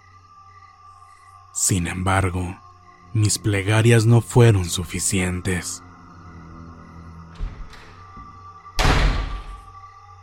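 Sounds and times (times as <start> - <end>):
speech: 1.6 - 5.9
door forced open with a loud heavy bang: 7.2 - 9.8.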